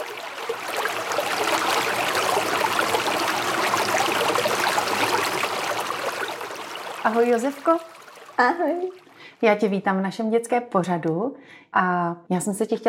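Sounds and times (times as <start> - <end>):
flowing river water rushing and gurgling: 0.0 - 8.4
speech: 7.0 - 12.8.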